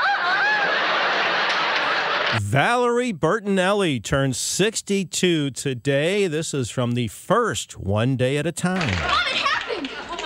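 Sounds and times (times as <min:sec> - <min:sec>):
laughter: 0:00.0 - 0:02.4, 0:09.4 - 0:10.2
crowd noise: 0:00.0 - 0:02.9, 0:08.7 - 0:10.2
speech: 0:02.5 - 0:09.5.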